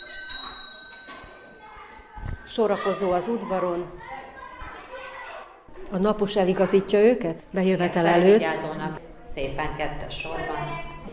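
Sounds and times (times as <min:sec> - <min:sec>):
electric school bell ringing to call children in for class: 0:00.0 - 0:01.6
speech: 0:02.5 - 0:04.1, 0:05.9 - 0:08.7, 0:09.4 - 0:10.8.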